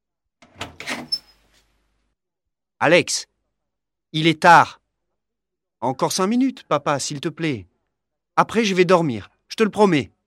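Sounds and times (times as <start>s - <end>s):
brief high squeak of a door hinge: 0.6s - 1.4s
speech: 2.8s - 3.3s, 4.1s - 4.8s, 5.8s - 7.7s, 8.4s - 10.2s.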